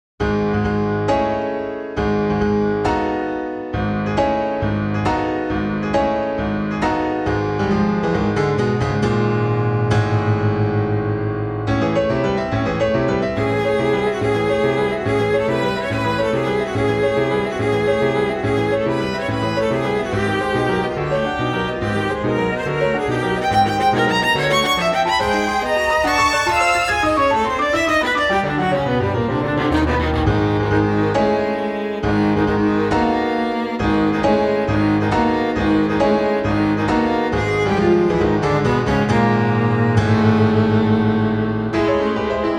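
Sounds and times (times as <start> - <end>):
piano: 0.2 - 42.5
viola: 13.0 - 42.5.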